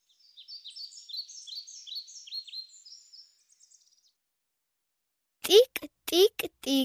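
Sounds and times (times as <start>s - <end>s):
bird chirping: 0.0s - 4.2s
speech: 5.5s - 6.8s.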